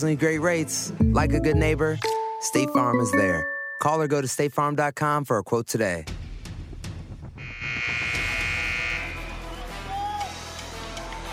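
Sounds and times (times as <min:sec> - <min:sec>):
speech: 0:00.0 - 0:06.2
basketball end-of-quarter buzzer blaring: 0:07.4 - 0:09.4.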